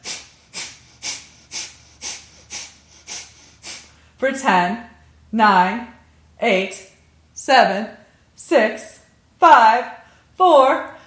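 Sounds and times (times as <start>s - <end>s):
sharp forceful nasal breaths of bellows breathing: 0.0s - 4.2s
speech: 4.2s - 6.8s, 7.4s - 10.9s.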